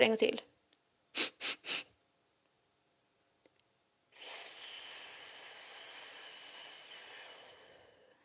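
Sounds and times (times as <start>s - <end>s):
speech: 0.0s - 0.5s
quick sniffing inhales in a breathing exercise: 1.2s - 1.9s, 4.2s - 8.1s
long steady airy exhale in a breathing exercise: 4.2s - 8.2s.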